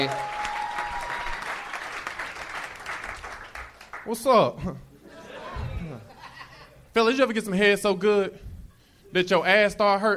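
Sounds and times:
speech: 0:00.0 - 0:00.4, 0:04.0 - 0:04.9, 0:07.0 - 0:08.4, 0:09.1 - 0:10.1
audience cheering: 0:00.0 - 0:03.6
large audience applauding: 0:00.0 - 0:04.1
laughter: 0:05.0 - 0:06.9.

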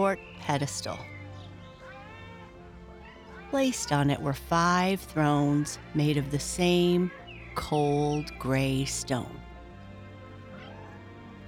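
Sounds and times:
speech: 0:00.0 - 0:01.2, 0:03.5 - 0:09.5
many cats meowing and caterwauling: 0:00.5 - 0:08.2, 0:10.5 - 0:11.4.

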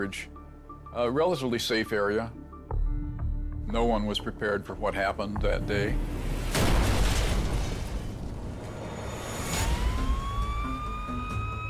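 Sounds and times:
speech: 0:00.0 - 0:02.4, 0:03.7 - 0:06.6
deep booming explosion: 0:06.0 - 0:10.4
emergency siren winding up: 0:09.1 - 0:11.6.

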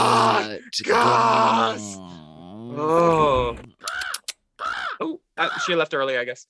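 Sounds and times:
speech: 0:00.0 - 0:03.7, 0:05.0 - 0:06.4
bird cawing: 0:03.8 - 0:05.7.

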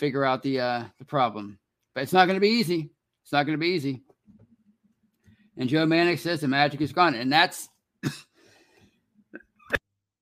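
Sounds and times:
speech: 0:00.0 - 0:04.1, 0:05.6 - 0:08.3
person coughing in short harsh bursts: 0:08.0 - 0:08.4
soft breath: 0:08.3 - 0:09.0.

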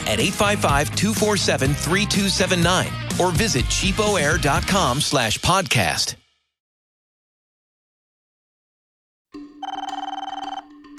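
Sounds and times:
speech: 0:00.1 - 0:06.2
telephone bell ringing with a rattling trill: 0:09.4 - 0:10.9.

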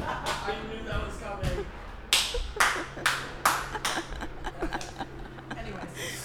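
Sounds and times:
person clapping hands: 0:00.0 - 0:00.5, 0:02.1 - 0:05.0
laughter: 0:00.0 - 0:06.2
low murmur: 0:00.0 - 0:06.2.

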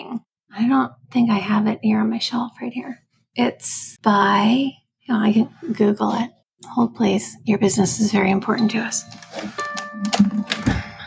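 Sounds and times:
speech: 0:00.1 - 0:10.4
computer keyboard typing: 0:09.1 - 0:10.9.

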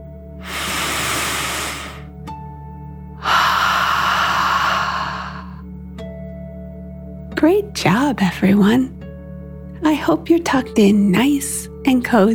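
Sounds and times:
long forceful breathy exhale: 0:00.4 - 0:02.1, 0:03.2 - 0:05.6
slow deep dragon breath inhale: 0:00.4 - 0:02.1, 0:03.2 - 0:05.6
speech: 0:07.4 - 0:09.0, 0:09.8 - 0:12.3.

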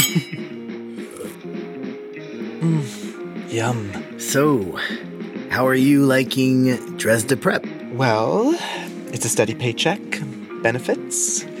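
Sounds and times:
cocktail glasses clinking in a toast: 0:00.0 - 0:00.5
speech: 0:02.6 - 0:11.5.

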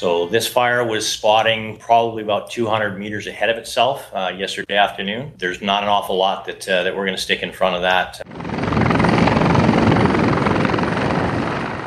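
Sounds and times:
speech: 0:00.0 - 0:08.3
firefighting helicopter rotor thumping: 0:08.2 - 0:11.8.

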